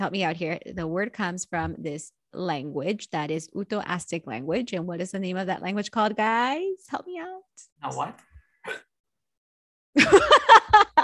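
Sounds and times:
speech: 0.0s - 8.9s
hiccup: 8.6s - 8.9s
laughter: 10.0s - 11.0s.

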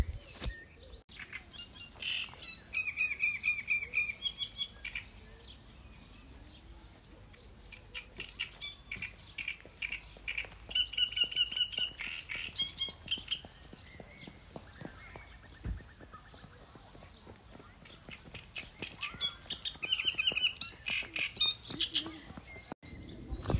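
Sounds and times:
reed warblers singing from reed beds at Lac d'Orient near Troyes France: 0.8s - 6.6s, 7.3s - 23.5s.

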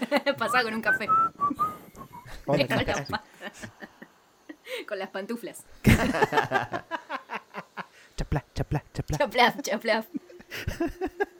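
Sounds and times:
speech: 0.1s - 1.8s, 2.4s - 3.7s, 4.8s - 7.0s, 8.2s - 11.2s
person whistling a tune: 0.4s - 2.4s
laughter: 2.3s - 4.6s, 5.8s - 7.9s, 10.0s - 11.3s.

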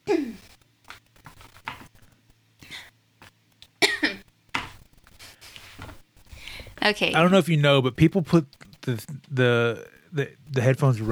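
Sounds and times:
person clearing throat with phlegmy rasps: 3.8s - 4.2s
speech: 6.8s - 11.1s.

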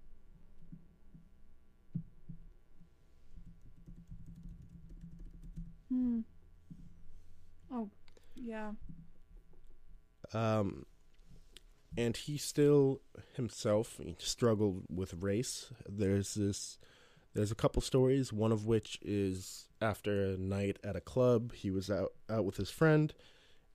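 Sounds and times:
rapid typing on a computer keyboard: 3.4s - 5.7s
speech: 7.8s - 8.9s, 10.3s - 10.9s, 12.0s - 23.4s.

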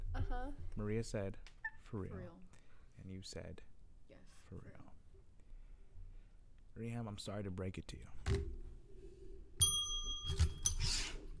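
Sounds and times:
speech: 0.3s - 5.0s, 6.8s - 8.6s
bell ringing: 9.6s - 10.8s.

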